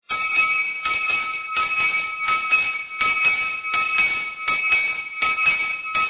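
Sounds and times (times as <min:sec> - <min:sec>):
handbell: 0:00.0 - 0:06.0.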